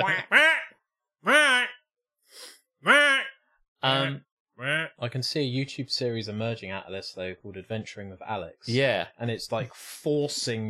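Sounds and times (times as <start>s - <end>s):
speech: 0.0s - 0.4s, 4.0s - 10.6s
person imitating geese honking: 0.0s - 1.8s, 2.8s - 5.0s.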